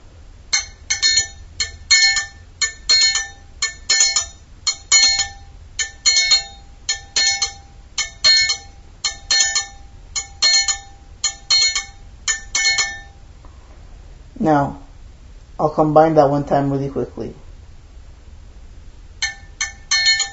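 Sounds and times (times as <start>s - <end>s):
triangle struck in a simple beat: 0.5s - 13.3s, 19.2s - 20.3s
speech: 14.4s - 14.8s, 15.6s - 17.4s.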